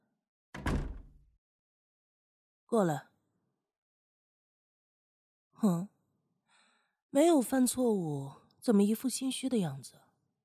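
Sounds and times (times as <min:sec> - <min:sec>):
door slamming shut: 0:00.6 - 0:01.2
speech: 0:02.7 - 0:03.1, 0:05.6 - 0:05.9, 0:07.1 - 0:10.0.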